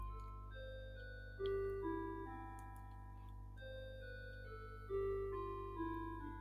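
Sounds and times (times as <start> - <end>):
clock chiming a slow melodic tune: 0.0 - 6.4.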